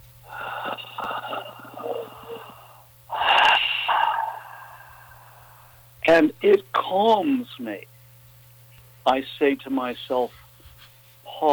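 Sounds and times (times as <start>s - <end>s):
person drawing a deep calming breath: 0.2s - 5.9s
speech: 6.1s - 7.9s, 9.0s - 10.4s.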